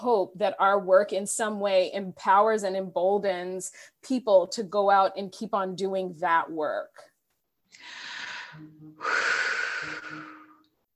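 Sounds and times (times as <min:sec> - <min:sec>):
speech: 0:00.0 - 0:07.1, 0:07.7 - 0:10.2
deep breathing: 0:07.7 - 0:10.6.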